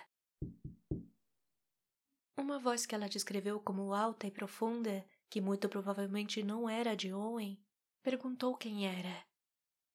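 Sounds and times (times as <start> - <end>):
speech: 0.4 - 0.7, 2.4 - 9.3
firm knocks on a wooden hotel room door: 0.4 - 1.1.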